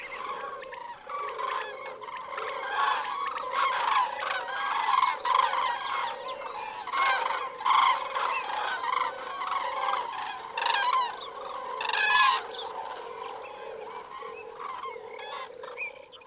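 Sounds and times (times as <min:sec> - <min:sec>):
large flock of migratory birds honking and cackling in a park: 0:00.0 - 0:16.2.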